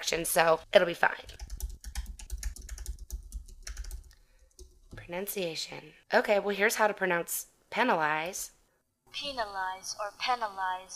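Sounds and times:
speech: 0:00.1 - 0:01.4, 0:05.1 - 0:10.9
typing a web search on a computer keyboard: 0:01.2 - 0:05.0.

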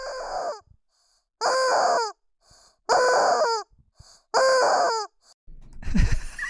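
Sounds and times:
squeezed rubber chicken toy squawking: 0:00.0 - 0:00.6, 0:01.4 - 0:02.2, 0:02.9 - 0:03.7, 0:04.3 - 0:05.2.

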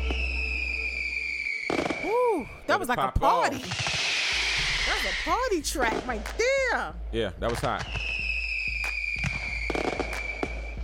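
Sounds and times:
fireworks bangs and crackles: 0:00.0 - 0:02.3, 0:03.5 - 0:06.8, 0:07.4 - 0:10.8
speech: 0:02.0 - 0:03.9, 0:04.9 - 0:08.1.

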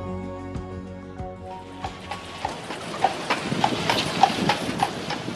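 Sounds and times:
hooves of a horse pulling a carriage clip-clopping through Central Park: 0:01.6 - 0:05.3.

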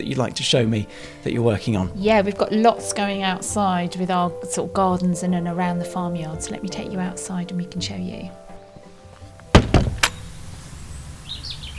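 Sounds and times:
speech: 0:00.0 - 0:08.4
birds chirping outdoors: 0:09.4 - 0:11.7
sharp thuds: 0:09.5 - 0:10.3.

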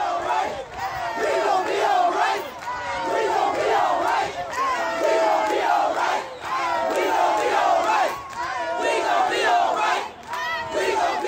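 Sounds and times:
protest crowd chanting a song refrain: 0:00.0 - 0:11.2.

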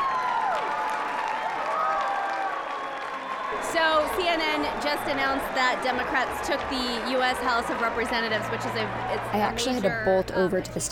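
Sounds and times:
high-pitched screams and whoops: 0:00.0 - 0:04.1
large crowd roaring and applauding: 0:00.0 - 0:10.3
speech: 0:03.5 - 0:10.9.

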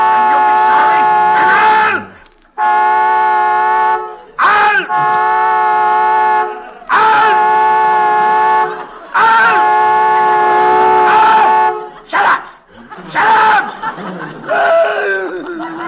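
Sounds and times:
laughter: 0:00.0 - 0:02.2, 0:03.9 - 0:15.8
short shouted voices: 0:00.0 - 0:02.2, 0:03.8 - 0:15.5
car horn blaring, stuck on by a short after a crash: 0:00.0 - 0:12.1.

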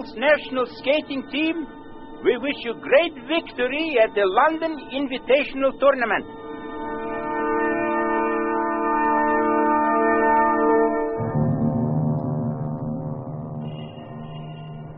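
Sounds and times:
speech: 0:00.0 - 0:06.4
clock tower chimes in London: 0:00.0 - 0:14.9.

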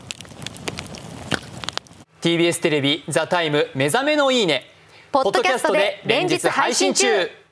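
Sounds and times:
campfire crackling and popping with burning wood hissing: 0:00.0 - 0:02.1
speech: 0:02.2 - 0:07.4.

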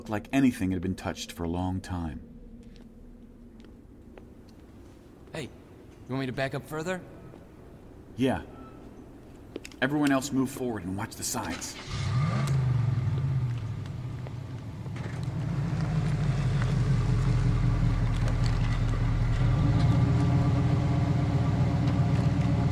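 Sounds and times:
speech: 0:00.0 - 0:02.3, 0:05.4 - 0:07.1, 0:08.2 - 0:08.5, 0:09.8 - 0:12.0
vehicle engine idling: 0:11.8 - 0:22.7.

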